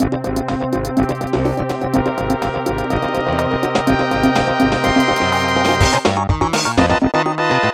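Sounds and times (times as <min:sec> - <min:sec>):
funky action game music with cinematic elements: 0:00.0 - 0:07.7.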